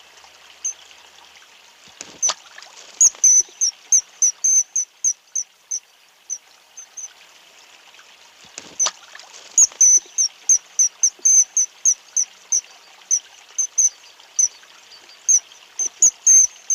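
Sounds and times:
soft background hiss: 0.0 - 16.7
kingfisher giving sharp high whistled notes: 3.0 - 5.2, 9.6 - 16.7.

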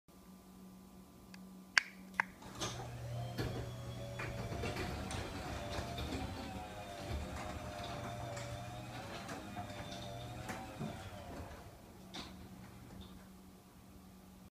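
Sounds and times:
parking garage door opening: 2.3 - 13.3.

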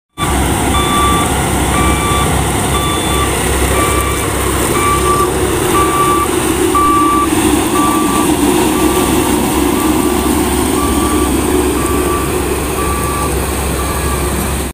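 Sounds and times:
road roller: 0.1 - 14.7.

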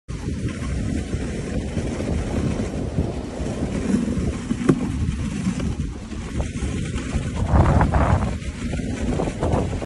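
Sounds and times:
sled: 0.1 - 9.8.

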